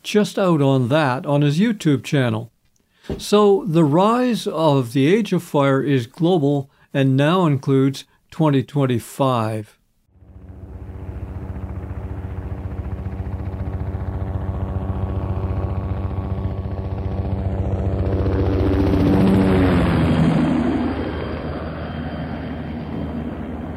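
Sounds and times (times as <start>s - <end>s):
speech: 0.1s - 2.5s, 3.1s - 9.8s
distant helicopters dumping water buckets on flaming bush in the hills: 10.2s - 23.7s.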